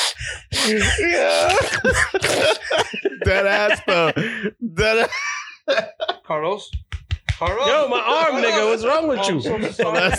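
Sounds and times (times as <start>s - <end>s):
person imitating gasping for air with choked wheezing breaths: 0.0s - 2.4s
speech: 0.3s - 10.1s
laughter: 0.6s - 10.1s.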